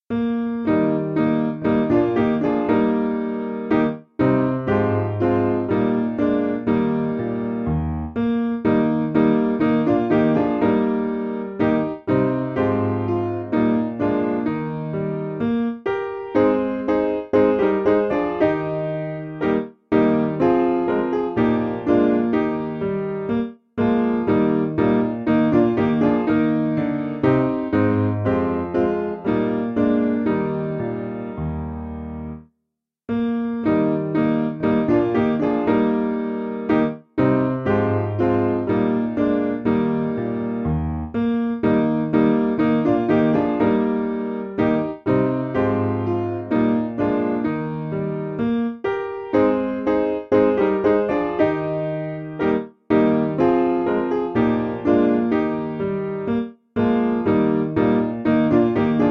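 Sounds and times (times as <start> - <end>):
piano piece: 0.0 - 59.0.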